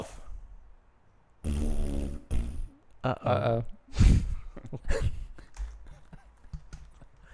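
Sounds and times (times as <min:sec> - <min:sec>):
loud buzzy fart: 0:01.4 - 0:02.8
speech: 0:03.0 - 0:05.2.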